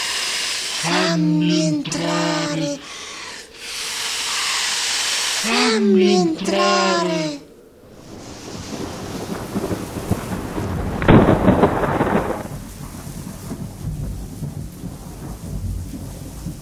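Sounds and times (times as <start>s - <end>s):
steady rain during a rainstorm: 0.0s - 5.6s, 7.8s - 16.6s
speech: 0.8s - 2.9s, 5.8s - 7.3s
rolling thunder during a rainstorm: 7.8s - 16.6s.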